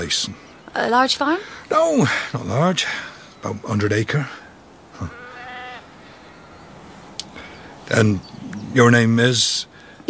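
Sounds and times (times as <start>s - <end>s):
speech: 0.0s - 4.4s, 5.0s - 5.2s, 7.9s - 10.0s
sheep bleating at lambing time on a small farm: 4.9s - 6.8s.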